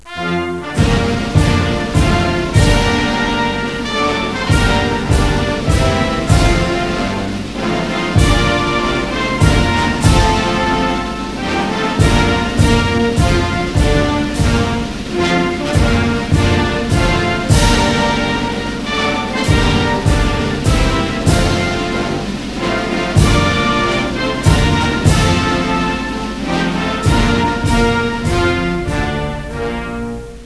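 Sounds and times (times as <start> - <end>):
national anthem music: 0.0 - 30.4.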